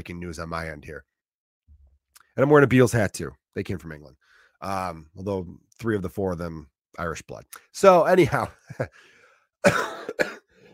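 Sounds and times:
speech: 0.0 - 1.1, 2.4 - 10.4
sick person coughing: 9.6 - 10.7.

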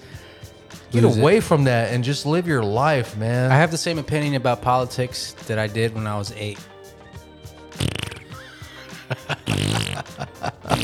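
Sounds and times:
speech: 0.9 - 6.7
buzzy sputtering fart sounds: 7.7 - 8.4, 9.2 - 10.8
laughter: 8.3 - 10.8.

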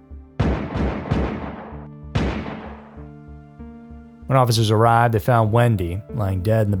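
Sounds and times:
sharp gunshots: 0.4 - 3.0
speech: 4.3 - 6.7.

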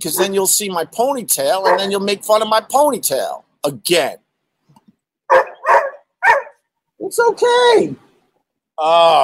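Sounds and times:
speech: 0.0 - 4.2, 7.0 - 8.1, 8.8 - 9.2
male dog barking loudly: 0.2 - 0.4, 1.6 - 2.0, 5.3 - 6.6.

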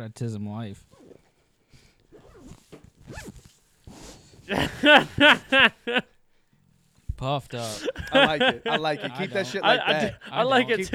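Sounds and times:
speech: 0.0 - 1.0, 4.5 - 6.1, 7.2 - 10.9
jacket zipper being zipped up: 2.1 - 4.4
laughter: 4.5 - 6.0, 7.5 - 10.9.

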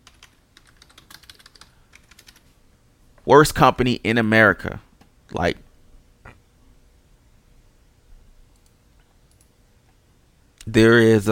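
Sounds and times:
rapid typing on a computer keyboard: 0.0 - 2.4
speech: 3.3 - 5.6, 10.8 - 11.3.

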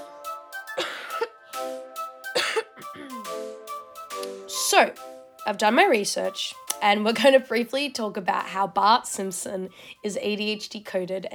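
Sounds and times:
upbeat music: 0.0 - 7.5
throat clearing: 2.4 - 2.7
person coughing: 2.4 - 2.8
speech: 4.7 - 11.3.

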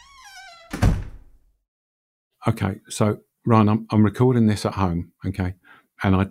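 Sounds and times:
door hinge squeak: 0.0 - 1.0
door shutting with a thunk: 0.0 - 1.4
speech: 2.4 - 6.2.

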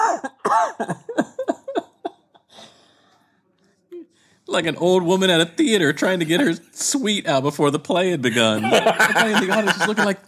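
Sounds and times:
speech: 0.2 - 1.1, 4.5 - 10.2
laughter: 5.8 - 6.8, 8.2 - 10.2
person coughing with rasping voiced edge: 6.0 - 6.6.

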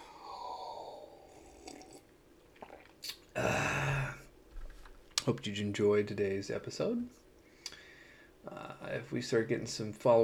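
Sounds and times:
person sipping wine: 0.0 - 3.5
person gulping swallow: 0.0 - 4.2
speech: 5.3 - 7.2, 8.9 - 10.2.

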